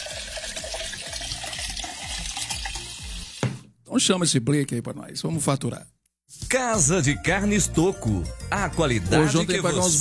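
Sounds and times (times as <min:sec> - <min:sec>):
water pouring from a bottle into a container: 0:00.0 - 0:03.6
speech: 0:03.9 - 0:09.9.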